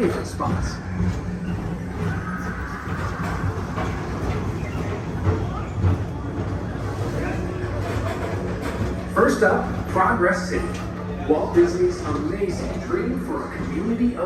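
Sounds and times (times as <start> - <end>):
speech: 0.0 - 1.6, 9.2 - 14.2
express train rolling along the track: 0.0 - 14.2
indistinct voices: 0.0 - 14.2.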